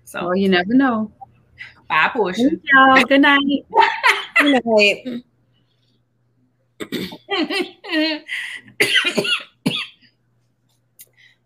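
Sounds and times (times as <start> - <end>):
speech: 0.1 - 5.3, 6.8 - 9.5
laughter: 3.8 - 4.7
person coughing: 6.8 - 7.3, 8.8 - 10.0.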